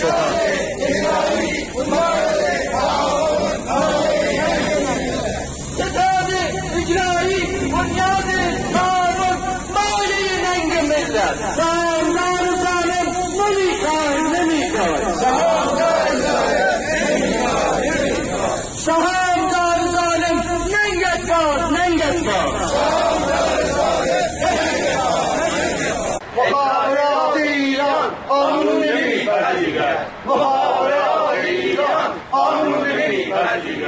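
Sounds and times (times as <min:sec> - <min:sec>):
large crowd of retired telecommunications workers chanting at a protest rally: 0:00.0 - 0:33.8.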